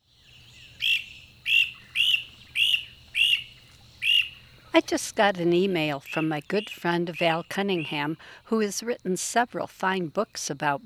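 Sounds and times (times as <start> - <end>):
Great Crested Flycatcher giving burry wheep calls: 0.2 - 8.5
speech: 4.8 - 10.8.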